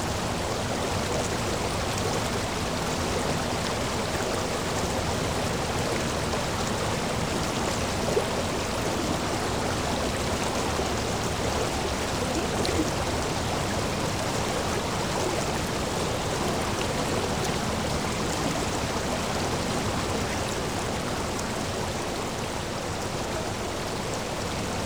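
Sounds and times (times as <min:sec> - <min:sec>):
river flowing: 0:00.2 - 0:24.8.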